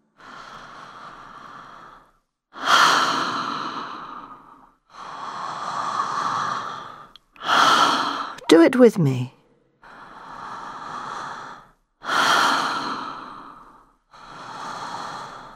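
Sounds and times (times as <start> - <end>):
long full breaths from the belly up to the chest during a breathing exercise: 0.0 - 8.4, 9.8 - 15.5
speech: 8.5 - 9.4.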